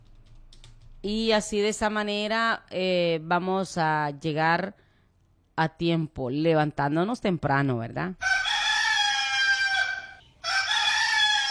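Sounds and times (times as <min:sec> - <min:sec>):
speech: 0:01.0 - 0:04.8, 0:05.6 - 0:08.3
rooster crowing: 0:08.2 - 0:11.5.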